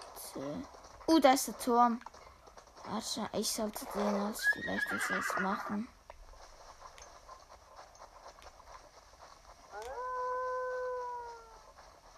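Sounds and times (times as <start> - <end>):
speech: 0.4 - 2.1, 2.8 - 6.0
video game wolf howling: 9.7 - 11.7.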